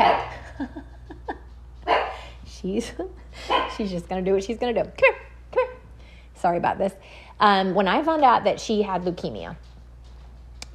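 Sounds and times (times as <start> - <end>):
dog yipping, whining and barking: 0.0 - 0.4, 1.9 - 2.2, 3.5 - 3.8
speech: 0.6 - 0.9, 2.6 - 5.2, 6.4 - 9.7.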